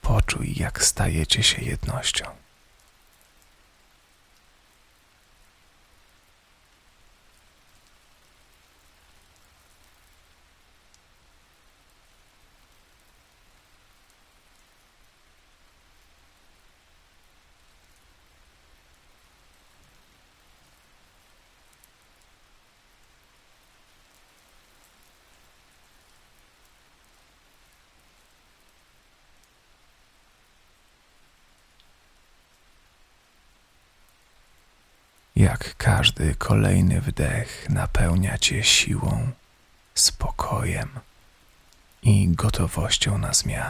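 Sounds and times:
speech: 0.3 - 2.4, 35.5 - 39.4, 40.0 - 41.1, 42.0 - 43.6
steady rain pattering on a surface: 2.3 - 35.4, 39.4 - 40.0, 41.0 - 42.0.

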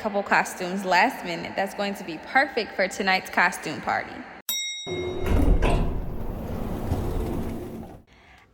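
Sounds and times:
speech: 0.0 - 5.1
door opening with a rumbling scrape as someone comes in: 5.0 - 8.1.

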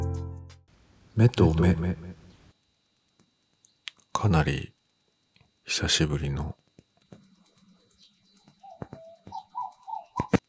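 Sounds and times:
speech: 1.2 - 2.2, 4.2 - 4.8, 5.7 - 6.6
pigeon or dove cooing outdoors: 8.6 - 10.4.

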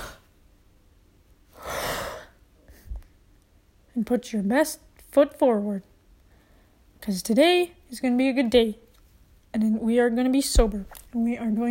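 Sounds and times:
person taking a slow deep breath: 1.5 - 2.9
speech: 4.0 - 5.9, 7.0 - 8.8, 9.5 - 11.6.

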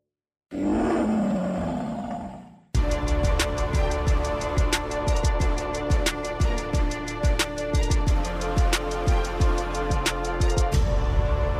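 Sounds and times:
lion roar: 0.5 - 2.8
music with a steady punchy beat: 2.8 - 11.5.

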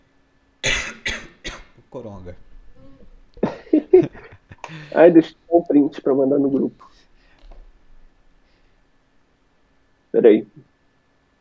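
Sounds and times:
person coughing: 0.6 - 1.8
speech: 1.9 - 2.5, 4.0 - 7.0, 10.2 - 10.7
laughter: 3.4 - 5.0.

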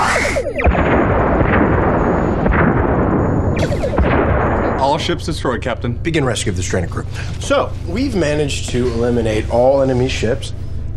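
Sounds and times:
sci-fi photon torpedo booming blasts: 0.0 - 5.1
speech: 5.0 - 10.6.

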